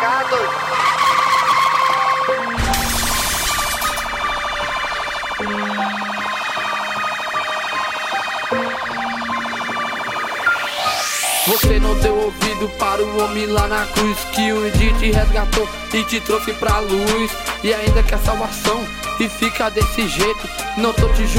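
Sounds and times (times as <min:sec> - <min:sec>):
police car siren wailing: 0:00.0 - 0:11.7
speech: 0:11.5 - 0:21.3.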